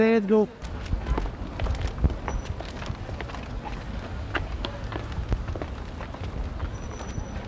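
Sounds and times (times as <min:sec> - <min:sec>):
speech: 0:00.0 - 0:00.7
heavy hurried footsteps climbing a flight of stairs: 0:00.7 - 0:07.4.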